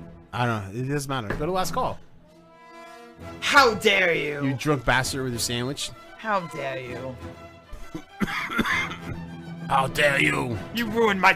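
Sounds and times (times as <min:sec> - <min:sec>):
speech: 0:00.3 - 0:02.1, 0:03.2 - 0:08.9, 0:09.7 - 0:11.3
raspy coughing fit: 0:07.8 - 0:09.2.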